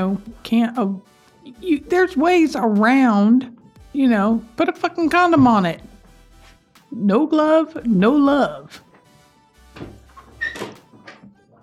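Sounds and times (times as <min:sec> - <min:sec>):
speech: 0:00.0 - 0:05.9, 0:06.9 - 0:08.9
studio door knocking and creaking as it swings: 0:09.8 - 0:11.3.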